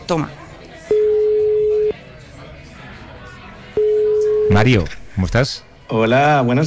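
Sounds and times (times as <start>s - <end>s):
faint noise: 0.0s - 6.6s
speech: 0.1s - 0.4s, 4.5s - 6.6s
electronic ringback tone of an outgoing phone call: 0.9s - 2.0s, 3.8s - 4.6s.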